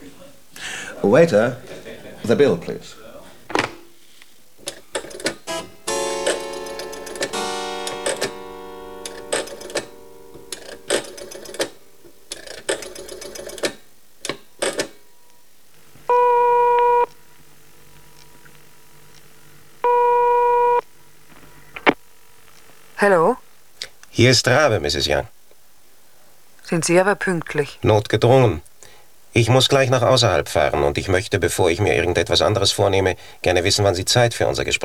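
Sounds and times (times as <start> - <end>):
laughter: 0.0 - 2.9
speech: 1.0 - 3.0, 24.2 - 25.4, 26.7 - 28.7, 29.3 - 34.8
telephone number dialed with mechanical clicks and rattles: 4.7 - 5.5, 9.1 - 15.0
steady electronic telephone ringing tones: 5.5 - 13.6, 16.1 - 17.1, 19.8 - 20.8.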